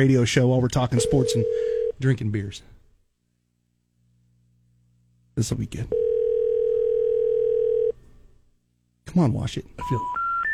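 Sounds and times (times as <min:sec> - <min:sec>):
speech: 0:00.0 - 0:02.8, 0:05.4 - 0:06.0, 0:09.1 - 0:10.2
faint low hum: 0:00.0 - 0:10.4
steady telephone tone on a call failing to connect: 0:01.0 - 0:02.0, 0:05.9 - 0:08.0.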